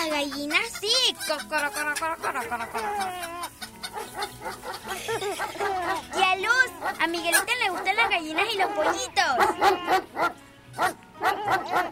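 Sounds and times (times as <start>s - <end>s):
speech: 0.2s - 11.9s
laughter: 1.2s - 6.2s, 11.2s - 11.9s
dog barking: 3.9s - 11.9s.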